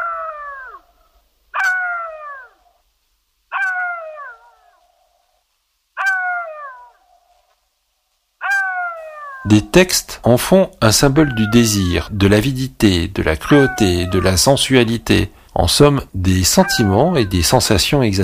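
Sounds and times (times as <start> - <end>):
jackal howling: 0.0 - 1.0, 1.6 - 2.8, 3.5 - 5.1, 6.0 - 7.2, 8.4 - 9.5, 11.0 - 12.2, 13.4 - 14.6, 16.5 - 17.6
speech: 9.4 - 18.2.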